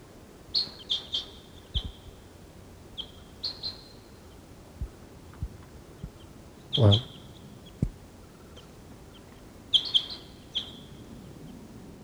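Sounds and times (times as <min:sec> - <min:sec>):
wild birds chirping: 0:05.9 - 0:10.8
bird decoys calling: 0:06.8 - 0:07.1
speech: 0:06.8 - 0:07.1.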